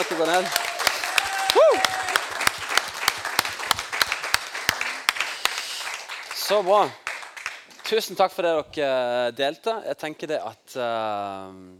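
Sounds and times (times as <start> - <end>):
speech: 0.0 - 0.7, 6.5 - 7.0, 7.9 - 11.7
crowd applauding: 0.0 - 8.3
whistle or cheer: 0.4 - 2.6.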